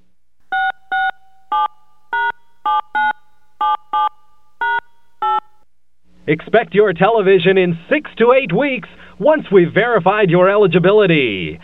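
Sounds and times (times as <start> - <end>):
touch-tone DTMF beeps keying a phone number: 0.5 - 5.6
speech: 6.3 - 11.6.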